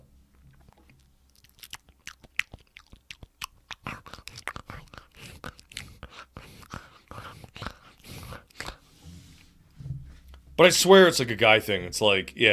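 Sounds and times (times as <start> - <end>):
dog gnawing on a rawhide chew: 0.5 - 8.8
speech: 10.6 - 12.5.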